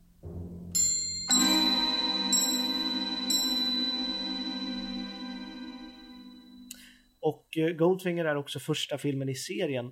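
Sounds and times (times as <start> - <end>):
orchestral film theme: 0.1 - 6.7
bright metallic anvil strikes: 0.2 - 6.6
glockenspiel tones: 0.8 - 7.0
speech: 7.3 - 9.9.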